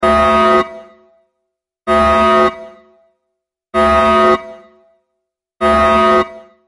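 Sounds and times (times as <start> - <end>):
warning system alarm: 0.0 - 1.0, 1.9 - 3.0, 3.8 - 4.8, 5.6 - 6.6.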